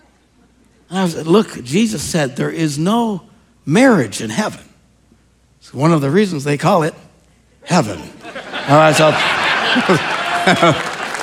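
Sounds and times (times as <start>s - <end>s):
speech: 0.9s - 4.7s, 5.6s - 7.0s, 7.6s - 10.9s
short bursts of laughter or vocal reactions from the audience: 8.2s - 11.2s
crowd applauding with men in the audience clapping: 8.6s - 11.2s.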